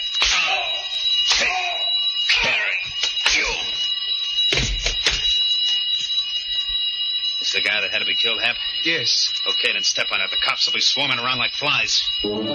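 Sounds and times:
alarm bell ringing shrilly: 0:00.0 - 0:12.5
sharp bangs: 0:00.1 - 0:03.8
speech: 0:07.5 - 0:12.5.

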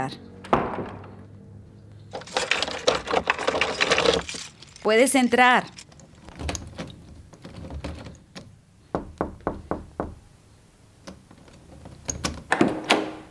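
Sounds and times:
speech: 0:00.1 - 0:00.9, 0:04.8 - 0:05.8
door opening: 0:02.1 - 0:10.2, 0:11.1 - 0:13.2
key turning in a lock with metallic rattling and clicking: 0:02.2 - 0:08.5, 0:11.1 - 0:12.5
sharp knocks on a door: 0:08.9 - 0:10.2.

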